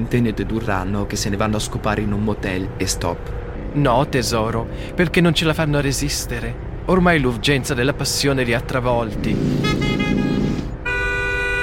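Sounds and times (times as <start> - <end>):
speech: 0.0 - 10.0
low rumble of a moving car: 0.0 - 11.6
car horn honking: 9.5 - 11.6.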